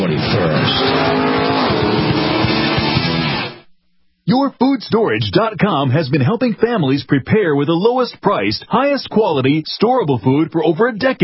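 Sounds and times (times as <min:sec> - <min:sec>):
high-revving sports race car engines roaring past at the Sebring race: 0:00.0 - 0:03.6
speech: 0:04.6 - 0:11.2.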